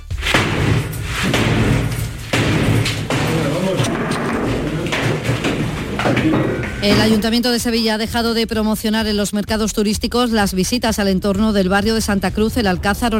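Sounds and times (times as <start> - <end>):
police battering down an apartment door in Seville Spain: 0.0 - 7.4
voices and commotion: 3.1 - 7.7
speech: 6.8 - 13.1.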